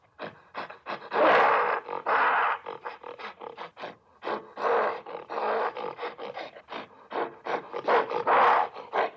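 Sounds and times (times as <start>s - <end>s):
gorilla: 0.0s - 9.1s.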